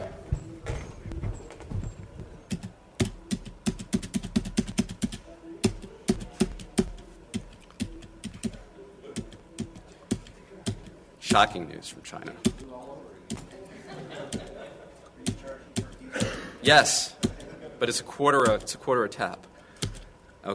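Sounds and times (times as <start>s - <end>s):
typing on a computer keyboard: 1.4s - 8.6s, 9.2s - 11.4s, 12.4s - 12.7s, 15.2s - 16.3s, 17.2s - 17.5s, 18.4s - 18.8s, 19.8s - 20.1s
speech: 11.4s - 12.9s, 16.6s - 17.2s, 17.8s - 19.5s
laughter: 13.4s - 18.1s.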